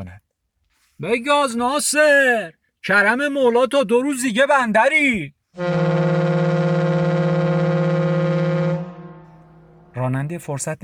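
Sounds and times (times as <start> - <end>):
speech: 1.0 - 5.9, 10.1 - 10.8
driver sounding a high-pitched vehicle horn: 5.6 - 10.0.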